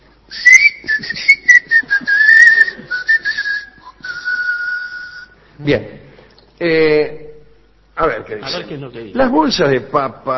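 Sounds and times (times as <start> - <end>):
person whistling a tune softly through the teeth: 0.3 - 5.4
speech: 5.6 - 6.0, 6.6 - 7.2, 8.0 - 10.3.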